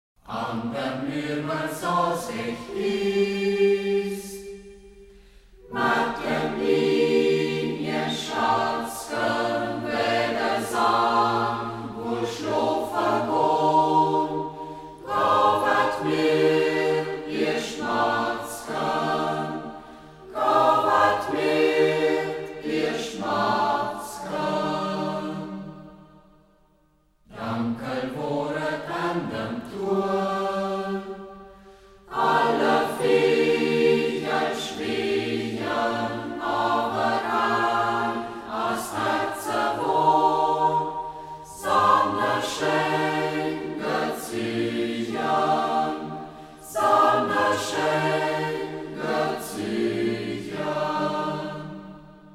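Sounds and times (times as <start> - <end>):
choir in local dialect of Reußmarkt: 0.2 - 52.3.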